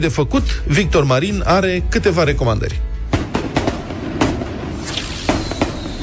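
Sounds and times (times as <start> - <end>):
speech: 0.0 - 2.9
firecrackers and fireworks banging: 3.1 - 6.0.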